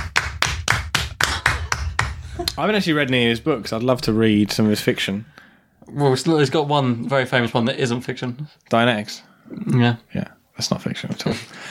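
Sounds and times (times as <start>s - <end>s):
steady rhythmic hand clapping: 0.0s - 2.6s
speech: 2.6s - 11.6s.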